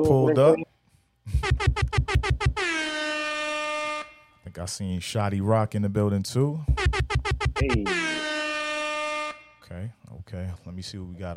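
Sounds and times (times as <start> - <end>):
speech: 0.0 - 0.7, 1.3 - 2.4, 4.5 - 8.3, 9.7 - 11.3
air horn sound effect blasts: 1.3 - 4.4, 6.7 - 9.7.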